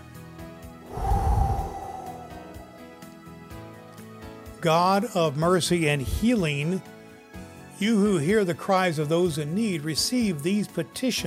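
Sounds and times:
slow deep breath taken during a breath prayer: 0:00.9 - 0:02.9
speech: 0:04.6 - 0:07.0, 0:07.8 - 0:11.2.

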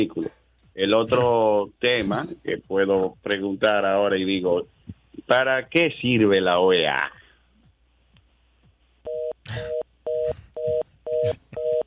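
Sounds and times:
speech: 0:00.0 - 0:07.2, 0:09.5 - 0:10.4, 0:11.2 - 0:11.4
telephone busy signal dual-tone beeps: 0:09.1 - 0:11.8.

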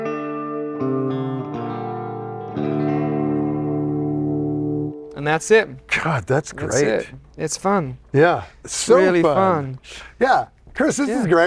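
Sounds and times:
electric guitar chords through a long reverb effect: 0:00.0 - 0:05.2
speech: 0:05.2 - 0:11.4.

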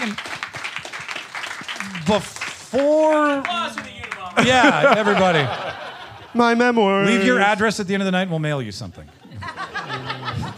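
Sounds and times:
speech: 0:00.0 - 0:00.3, 0:01.8 - 0:09.2
crowd clapping: 0:00.0 - 0:06.1
laughter: 0:04.1 - 0:07.6, 0:09.0 - 0:10.5.

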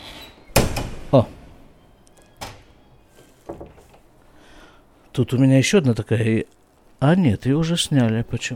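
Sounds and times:
door being pushed shut: 0:00.0 - 0:04.1
speech: 0:01.1 - 0:01.4, 0:05.2 - 0:08.5.

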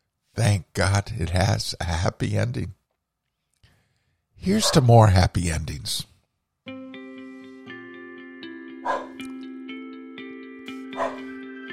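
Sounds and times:
speech: 0:00.4 - 0:02.8, 0:04.4 - 0:06.1
dog barking: 0:04.5 - 0:04.9, 0:08.8 - 0:09.2, 0:10.9 - 0:11.4
sustained musical tones: 0:06.7 - 0:11.7.

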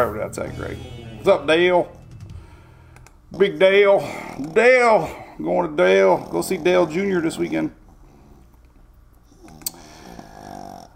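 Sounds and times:
speech: 0:00.0 - 0:02.0, 0:03.3 - 0:07.8
low rumbling: 0:00.0 - 0:03.7
rough nasal snore with a whistling tone: 0:05.9 - 0:08.4, 0:09.3 - 0:10.9.

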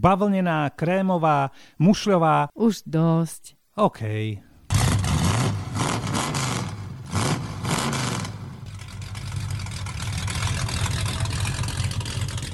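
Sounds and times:
speech: 0:00.0 - 0:04.5
car engine cranking, revving and idling: 0:04.7 - 0:12.5.

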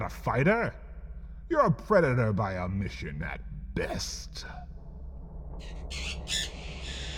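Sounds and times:
speech: 0:00.0 - 0:00.8, 0:01.5 - 0:04.7, 0:05.6 - 0:06.5
steady low rumble: 0:00.0 - 0:07.1
large bird squawking on a porch: 0:05.6 - 0:07.1.

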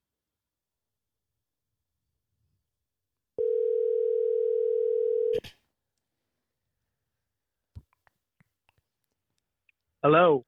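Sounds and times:
telephone dial tone of an outgoing call: 0:03.4 - 0:05.4
speech: 0:10.0 - 0:10.4.

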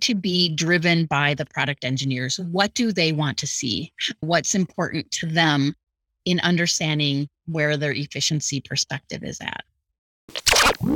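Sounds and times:
speech: 0:00.0 - 0:09.7, 0:10.8 - 0:10.9
tape scratch sound effect: 0:10.3 - 0:10.9.

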